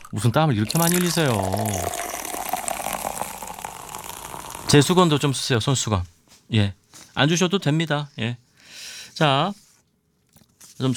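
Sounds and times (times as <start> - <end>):
canned sparkling water poured into a glass: 0.0 - 5.4
speech: 0.1 - 2.2, 4.7 - 8.4, 9.2 - 9.6, 10.8 - 10.9.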